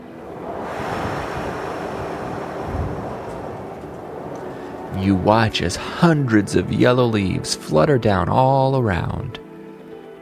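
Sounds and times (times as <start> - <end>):
strong gust of wind blowing: 0.0 - 9.3
speech: 5.0 - 9.4.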